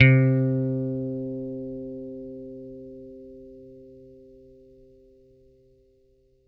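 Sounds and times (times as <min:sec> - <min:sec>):
picked bass note C3: 0:00.0 - 0:01.9.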